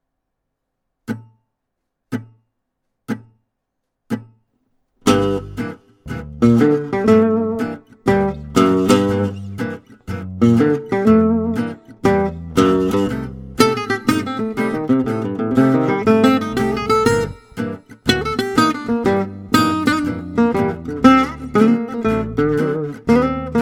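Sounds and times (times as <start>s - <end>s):
minor blues with solo: 5.1s - 23.6s.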